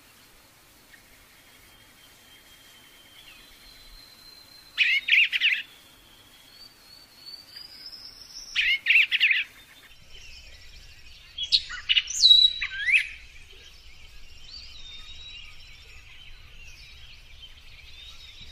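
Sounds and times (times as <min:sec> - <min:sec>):
lovebird chatter used as a lure: 0:08.5 - 0:18.5.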